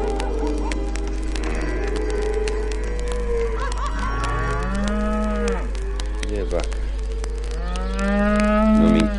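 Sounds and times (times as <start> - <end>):
laughter: 0.1 - 2.2, 3.4 - 4.7
cows mooing: 1.4 - 6.4, 7.6 - 9.1.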